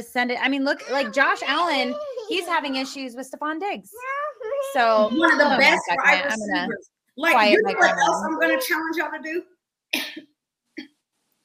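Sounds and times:
speech: 0:00.0 - 0:10.0
person coughing: 0:10.0 - 0:10.3.

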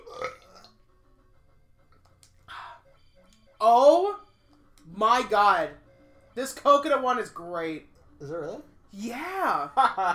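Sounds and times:
short gurgling burp made on command: 0:00.0 - 0:00.7
speech: 0:05.0 - 0:05.8, 0:06.4 - 0:10.1.

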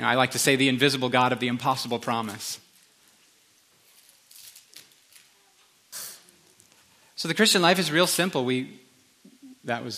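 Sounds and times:
speech: 0:00.0 - 0:02.6, 0:07.2 - 0:08.8, 0:09.6 - 0:09.9
sharp breathy sneezes: 0:05.9 - 0:06.3.

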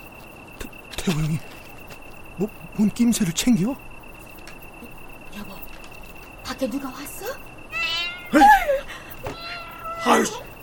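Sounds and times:
quiet steady hum: 0:00.0 - 0:10.6
speech: 0:01.0 - 0:01.6, 0:02.4 - 0:03.9, 0:06.6 - 0:07.5, 0:08.3 - 0:08.8, 0:10.0 - 0:10.4
stray cat meowing outside at night: 0:07.7 - 0:08.4, 0:09.2 - 0:10.5.

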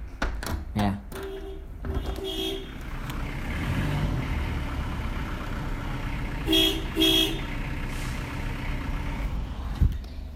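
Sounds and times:
street traffic rumble: 0:00.0 - 0:10.3
car horn honking: 0:01.2 - 0:02.8, 0:06.4 - 0:07.6.

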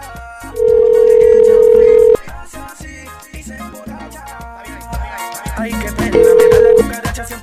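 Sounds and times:
music: 0:00.0 - 0:07.4
outgoing phone call ringback tone: 0:00.6 - 0:02.4, 0:06.2 - 0:07.0.

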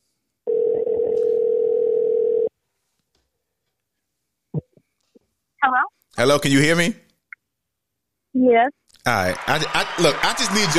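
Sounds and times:
telephone dial tone while a call is being placed: 0:00.5 - 0:02.5
speech: 0:05.6 - 0:07.0, 0:08.4 - 0:10.7.

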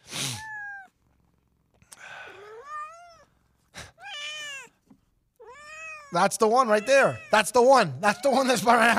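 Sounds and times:
cat meowing: 0:00.3 - 0:01.0, 0:02.3 - 0:03.3, 0:04.0 - 0:04.8, 0:05.4 - 0:07.4
speech: 0:06.1 - 0:08.9.

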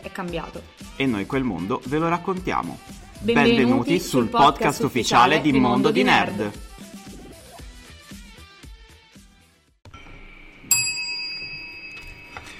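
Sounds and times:
speech: 0:00.2 - 0:06.7
small bell struck and ringing: 0:10.7 - 0:12.5.

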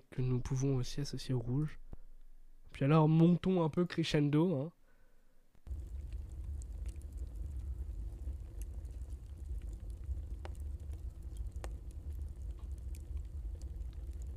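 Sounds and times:
speech: 0:00.2 - 0:01.8, 0:02.8 - 0:04.8
sharp crackles and ticks: 0:05.6 - 0:14.3
deep roar of a boiler furnace: 0:05.7 - 0:14.3.

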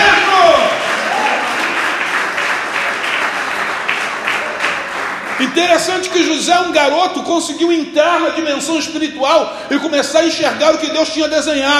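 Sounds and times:
audience applauding: 0:00.0 - 0:06.5
speech: 0:05.6 - 0:11.7.

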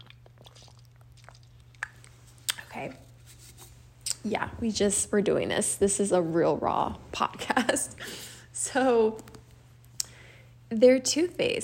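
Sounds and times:
person sipping water: 0:00.0 - 0:03.7
steady low hum: 0:00.0 - 0:11.6
speech: 0:02.8 - 0:03.1, 0:04.2 - 0:09.3, 0:10.7 - 0:11.6.

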